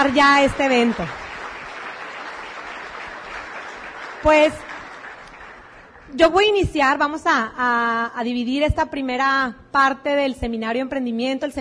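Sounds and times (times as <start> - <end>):
speech: 0.0 - 1.2, 4.2 - 4.7, 6.1 - 11.6
audience applause at a seminar event: 0.0 - 6.2.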